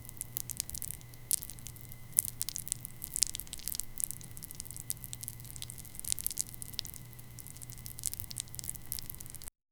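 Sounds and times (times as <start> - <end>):
crunching transparent burger: 0.0 - 9.5.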